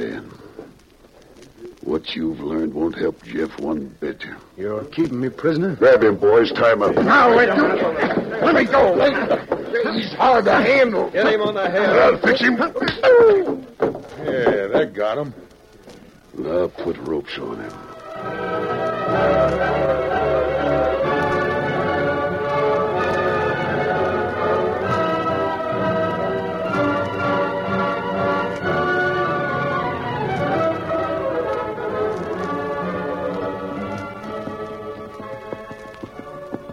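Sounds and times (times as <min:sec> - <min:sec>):
speech: 0:02.0 - 0:13.6, 0:14.3 - 0:15.5, 0:16.4 - 0:20.0
horses' hooves clip-clopping at a walking pace: 0:04.7 - 0:36.7
laughter: 0:06.0 - 0:15.3
loud sustained orchestral music: 0:17.8 - 0:36.7.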